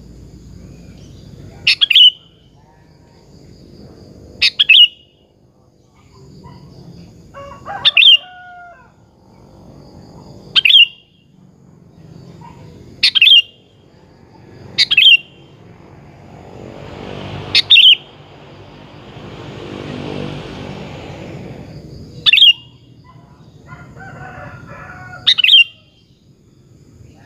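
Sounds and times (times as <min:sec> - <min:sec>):
engine drone: 0:00.0 - 0:25.6
sooty-headed bulbul singing bubbling phrases: 0:00.9 - 0:02.6, 0:04.4 - 0:05.3, 0:10.5 - 0:11.3, 0:12.0 - 0:15.7, 0:16.8 - 0:20.0, 0:22.0 - 0:23.0.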